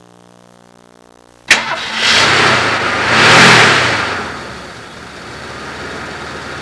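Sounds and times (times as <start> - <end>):
vehicle starting: 1.5 - 6.6.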